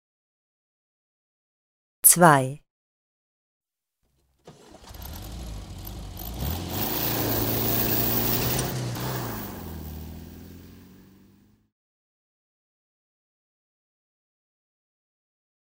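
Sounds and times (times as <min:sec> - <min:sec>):
speech: 0:02.1 - 0:02.6
car engine cranking, revving and idling: 0:04.4 - 0:11.6.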